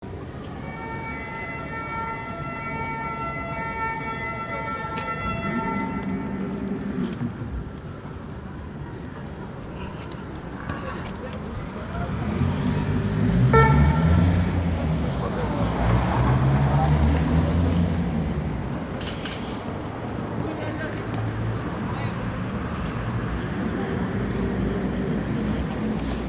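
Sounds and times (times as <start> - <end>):
traffic: 0.0 - 26.2.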